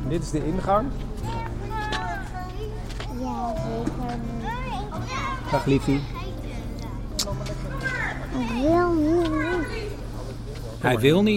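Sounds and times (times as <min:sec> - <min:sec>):
speech: 0:00.1 - 0:01.4, 0:05.5 - 0:06.2, 0:08.5 - 0:09.5, 0:10.8 - 0:11.3
children's voices on a school playground: 0:01.2 - 0:10.0.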